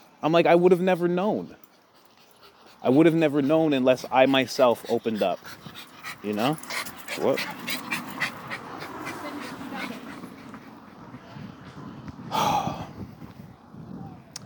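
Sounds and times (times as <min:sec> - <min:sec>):
steady outdoor noise: 0:00.0 - 0:14.4
speech: 0:00.2 - 0:01.7, 0:02.8 - 0:07.8
dog huffing and whimpering: 0:01.0 - 0:11.1.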